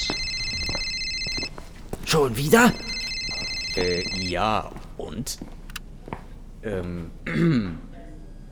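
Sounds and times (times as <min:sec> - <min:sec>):
police inspector's telephone ringing with a high electronic tone: 0:00.0 - 0:04.6
speech: 0:02.1 - 0:02.9, 0:03.8 - 0:05.5, 0:06.6 - 0:07.9.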